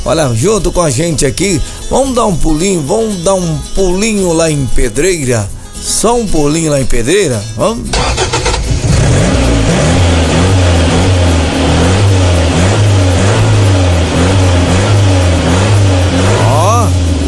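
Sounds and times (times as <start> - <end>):
speech: 0.0 - 8.2
car engine starting and revving: 7.8 - 17.2.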